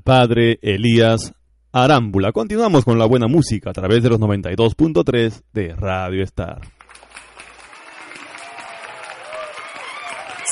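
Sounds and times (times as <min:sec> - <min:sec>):
speech: 0:00.0 - 0:07.1
large audience applauding during Christian praise: 0:06.7 - 0:10.4.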